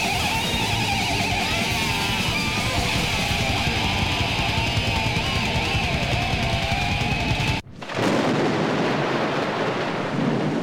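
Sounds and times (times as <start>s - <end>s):
loud dense chaotic music: 0.0s - 7.6s
thunder-like rumbling: 0.0s - 10.6s.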